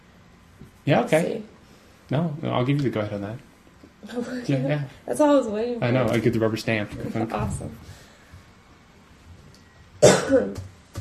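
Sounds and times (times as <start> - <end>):
speech: 0.8 - 8.0, 10.0 - 10.7
dry cough from an itchy throat: 10.0 - 10.6.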